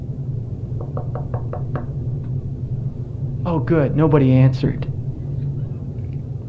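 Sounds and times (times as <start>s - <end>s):
low steady hum: 0.0s - 6.4s
light knocking on a door: 0.8s - 2.0s
speech: 3.4s - 4.9s.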